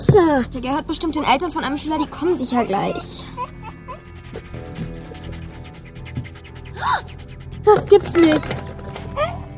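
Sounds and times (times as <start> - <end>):
speech: 0.1 - 3.8, 6.8 - 9.3
dog panting while shut in a hot car: 0.3 - 9.5.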